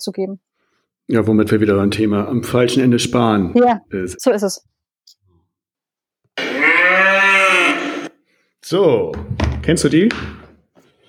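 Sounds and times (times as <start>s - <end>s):
speech: 0.0s - 0.5s, 1.1s - 4.7s, 8.7s - 10.4s
cow moo sound effect: 6.4s - 8.1s.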